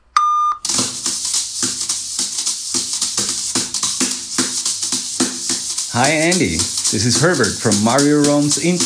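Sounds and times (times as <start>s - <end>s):
electronic voicemail beep from a phone: 0.2s - 0.7s
loud rhythmic music with steady percussive hits: 0.6s - 8.8s
speech: 6.0s - 8.8s.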